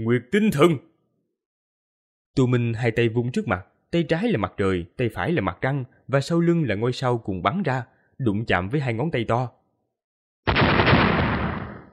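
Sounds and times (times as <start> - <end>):
speech: 0.0 - 0.9, 2.4 - 9.6
massive explosion: 10.5 - 11.9.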